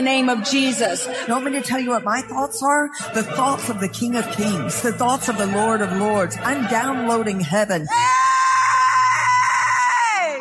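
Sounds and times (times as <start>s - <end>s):
speech: 0.0s - 8.2s
woman screaming in played recording: 7.9s - 10.3s.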